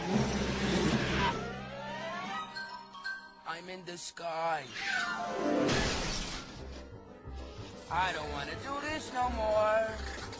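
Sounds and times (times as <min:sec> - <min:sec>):
small clown car engine revving and idling: 0:00.0 - 0:01.7
speech: 0:03.6 - 0:06.2, 0:07.9 - 0:10.2.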